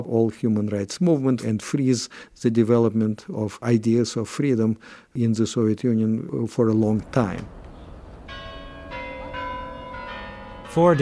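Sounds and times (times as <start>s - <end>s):
speech: 0.0s - 7.6s, 10.8s - 11.0s
Kremlin tower bells in Moscow striking noon: 7.0s - 11.0s.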